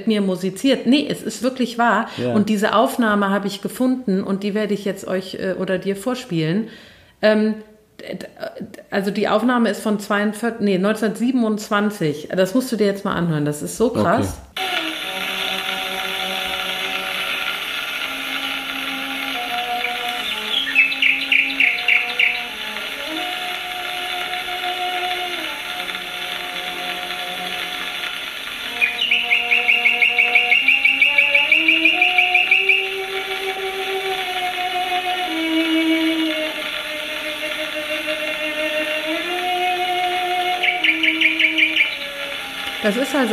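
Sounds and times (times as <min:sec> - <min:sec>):
old recording hiss: 0:00.0 - 0:12.8, 0:13.6 - 0:43.3
speech: 0:00.0 - 0:14.6
slow sustained cello melody: 0:14.6 - 0:43.3
nightingale trilling: 0:19.7 - 0:22.8, 0:28.6 - 0:33.2, 0:40.4 - 0:43.3.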